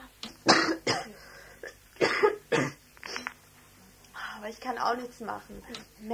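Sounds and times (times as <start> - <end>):
person coughing: 0.4 - 3.3
speech: 4.5 - 6.1.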